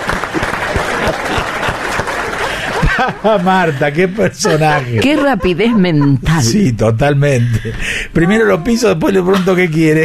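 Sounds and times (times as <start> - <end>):
audience applause in response to a quick-witted remark: 0.0 - 3.5
laughter: 0.1 - 7.8
speech: 3.0 - 10.0.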